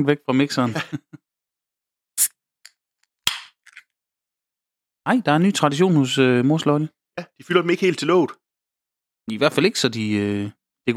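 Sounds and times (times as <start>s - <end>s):
speech: 0.0s - 1.2s, 5.0s - 8.4s, 9.3s - 10.9s
laughter: 0.6s - 1.2s
beer can of barrel imperial stout being cracked open: 3.3s - 3.8s.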